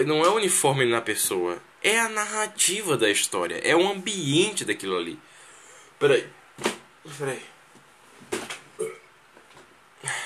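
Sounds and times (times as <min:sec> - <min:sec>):
speech: 0:00.0 - 0:05.3, 0:06.0 - 0:07.5
short throaty burps: 0:08.8 - 0:09.1.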